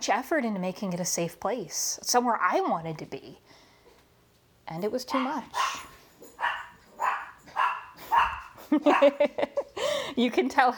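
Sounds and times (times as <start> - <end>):
speech: 0.0 - 3.6, 4.7 - 5.9, 8.7 - 10.7
several dogs barking: 5.1 - 9.4.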